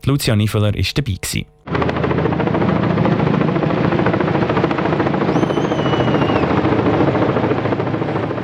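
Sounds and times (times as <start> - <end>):
speech: 0.0 - 2.1
high helicopter whine: 1.5 - 8.4
deep helicopter engine drone: 1.6 - 8.4
helicopter rotor chop carrying a 20-metre Christmas fir tree over monastery grounds: 1.7 - 8.4.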